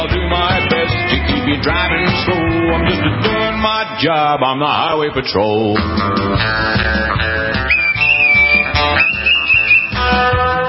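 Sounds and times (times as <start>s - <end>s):
speech: 0.0s - 0.4s, 1.5s - 7.3s
full band backing: 0.0s - 10.6s
whistled melody: 7.4s - 10.6s.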